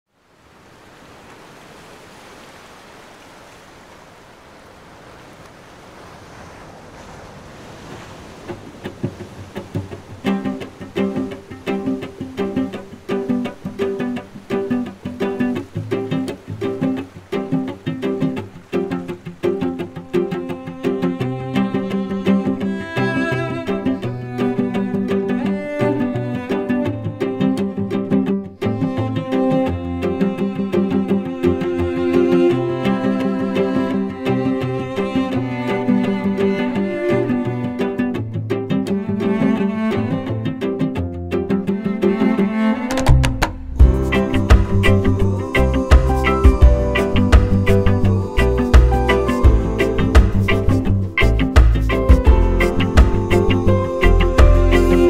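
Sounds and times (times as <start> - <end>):
cello: 8.4 - 55.0
piano: 31.0 - 37.8, 43.6 - 55.0.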